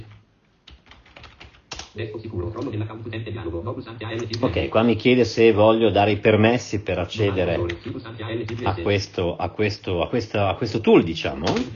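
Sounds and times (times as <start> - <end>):
computer keyboard typing: 0.0 - 2.0, 8.5 - 8.8
low hum: 0.0 - 11.7
speech: 2.0 - 11.7.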